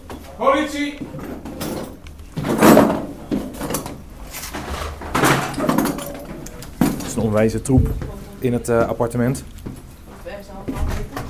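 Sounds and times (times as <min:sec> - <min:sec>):
speech: 0:00.4 - 0:01.4, 0:07.2 - 0:09.8
door being forced open during police raid: 0:01.4 - 0:08.2.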